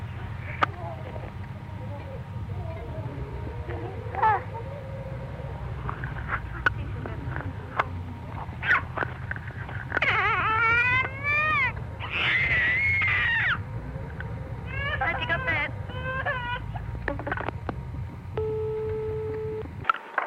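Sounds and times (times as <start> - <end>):
telephone line hum: 0.0 - 20.2
toddler screaming over a telephone line: 10.0 - 13.6.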